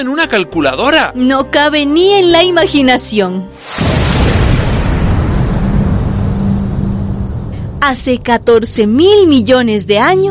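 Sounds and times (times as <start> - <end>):
speech: 0.0 - 4.0, 7.8 - 10.3
explosive roar with deep rumbling representing the Big Bang: 3.7 - 9.0.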